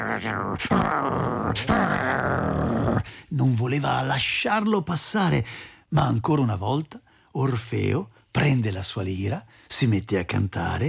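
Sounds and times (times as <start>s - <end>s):
three-headed dog growling: 0.0s - 3.1s
speech: 0.2s - 10.8s.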